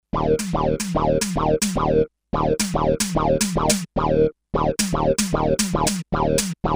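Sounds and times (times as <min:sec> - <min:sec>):
hard synthesizer sound: 0:00.2 - 0:02.0, 0:02.6 - 0:03.9, 0:04.8 - 0:06.6.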